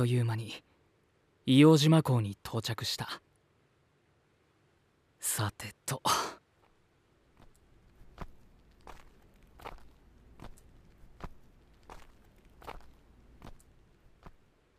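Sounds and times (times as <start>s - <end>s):
speech: 0.0s - 0.7s, 1.5s - 3.3s, 5.2s - 6.4s
footsteps walking along a path toward an island lighthouse: 6.6s - 14.7s.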